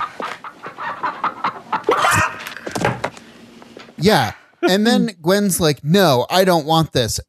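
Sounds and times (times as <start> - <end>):
chicken clucking: 0.0 - 2.5
speech: 4.0 - 7.2.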